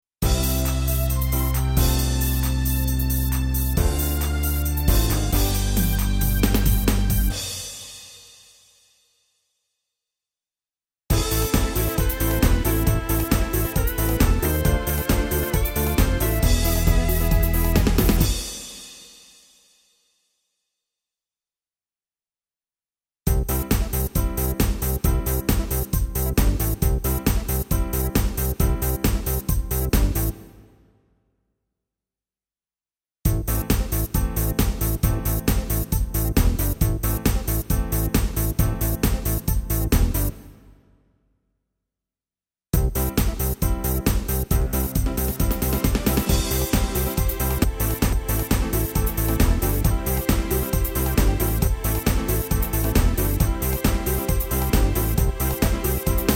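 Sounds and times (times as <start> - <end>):
Hungarian disco music: 0.2 - 7.6, 11.1 - 18.7, 23.3 - 30.4, 33.3 - 40.4, 42.8 - 56.3.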